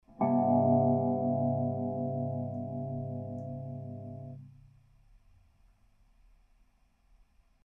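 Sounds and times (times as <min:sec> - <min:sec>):
electric guitar: 0:00.1 - 0:04.5.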